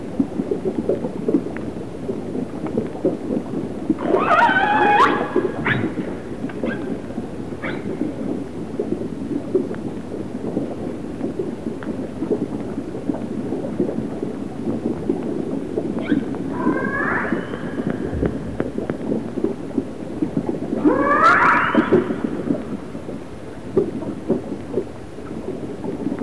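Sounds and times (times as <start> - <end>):
low rumbling underwater noise: 0.0 - 26.2
resident orca calls of the A clan: 16.5 - 18.1, 20.8 - 22.4.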